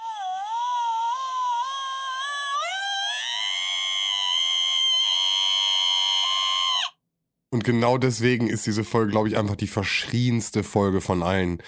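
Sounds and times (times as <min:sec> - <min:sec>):
novelty alarm clock playing a synthetic scream: 0:00.0 - 0:07.0
speech: 0:07.5 - 0:11.6.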